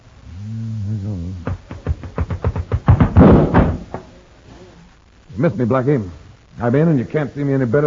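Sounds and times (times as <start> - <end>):
sharp knocks and rattles: 1.4 - 4.1
door slamming shut with a heavy booming thud: 2.9 - 4.1
speech: 5.4 - 7.8.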